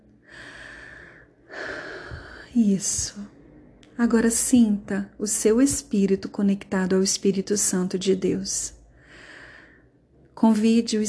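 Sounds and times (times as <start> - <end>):
deep breath in: 0.2 - 2.5, 8.9 - 10.1
speech: 2.6 - 3.4, 4.0 - 8.8, 10.4 - 11.0.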